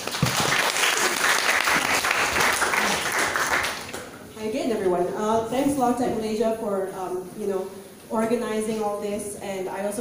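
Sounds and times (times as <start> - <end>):
audience applause: 0.0 - 4.1
speech: 5.3 - 9.9.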